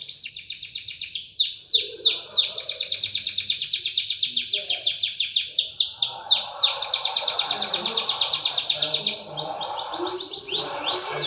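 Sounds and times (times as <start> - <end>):
canary song with rapid high trills: 0.0 - 11.2.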